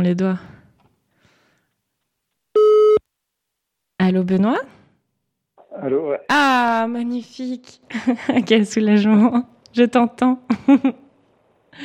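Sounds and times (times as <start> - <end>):
speech: 0.0 - 0.5, 4.1 - 4.8, 5.8 - 11.0
Skype call connecting tone: 2.6 - 3.0.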